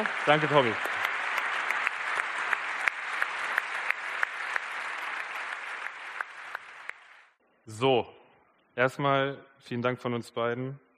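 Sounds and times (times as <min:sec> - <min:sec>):
speech: 0:00.0 - 0:01.0, 0:07.7 - 0:08.2, 0:08.8 - 0:10.8
audience clapping: 0:00.0 - 0:07.4.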